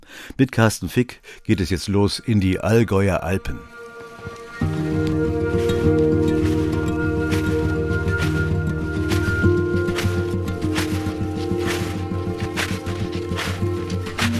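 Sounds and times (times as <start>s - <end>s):
speech: 0.3s - 4.8s
sustained droning musical bed: 2.4s - 14.3s
footsteps crunching in snow as if on snowshoes: 3.8s - 14.3s.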